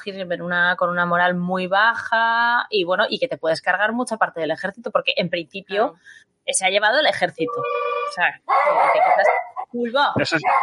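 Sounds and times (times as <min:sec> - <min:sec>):
speech: 0:00.0 - 0:10.6
dog barking and yipping: 0:08.5 - 0:09.6, 0:10.4 - 0:10.6.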